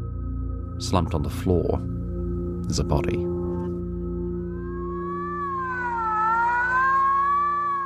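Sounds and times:
speech: 0.8 - 2.0, 2.7 - 3.4
ambulance siren wailing: 3.4 - 7.8.

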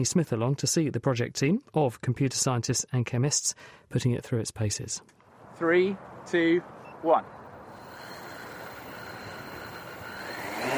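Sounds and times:
speech: 0.0 - 7.4
six-rotor hexacopter drone taking off: 7.7 - 10.7.

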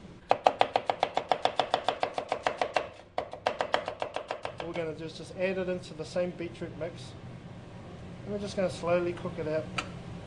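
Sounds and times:
knife chopping an onion on a board: 0.3 - 4.8
speech: 4.7 - 7.2, 8.3 - 10.0.

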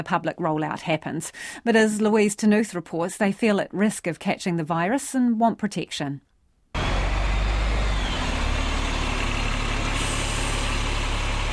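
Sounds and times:
speech: 0.0 - 6.3
bus engines idling on a city street: 6.8 - 11.5
traffic noise on a busy city street: 6.8 - 11.5.

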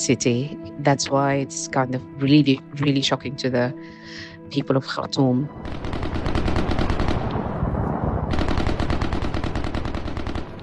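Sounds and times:
speech: 0.0 - 5.9
heavy gunfire: 5.6 - 10.6.

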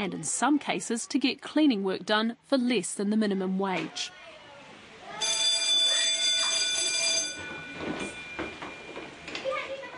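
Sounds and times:
speech: 0.0 - 4.2
murmur of voices: 0.0 - 9.9
school bell ringing: 5.2 - 9.2.

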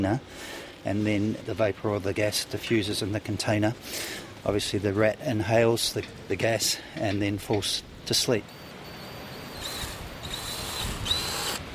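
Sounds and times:
speech: 0.0 - 8.6
power drill boring a hole in a brass tracking collar: 8.5 - 11.6.

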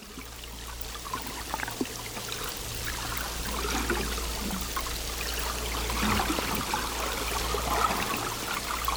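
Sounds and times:
faint crackles and pops: 0.0 - 8.9
turbulent rough seawater heard from underwater: 0.0 - 8.9.

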